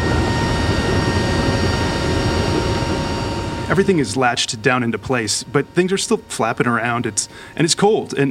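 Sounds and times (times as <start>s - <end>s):
rushing wind inside a cargo plane with rear doors open: 0.0s - 4.7s
engines roaring inside a cargo plane with rear doors open: 0.0s - 7.6s
faint high whine: 0.0s - 8.3s
speech: 3.8s - 8.3s.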